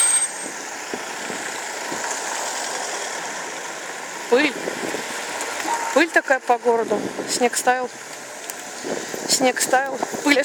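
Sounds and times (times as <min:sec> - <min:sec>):
brake squeal: 0:00.0 - 0:01.0
minibuses driving by on a city street: 0:00.0 - 0:10.4
steady roar of city traffic: 0:00.0 - 0:10.4
speech: 0:04.3 - 0:05.0, 0:06.0 - 0:08.2, 0:08.8 - 0:10.4.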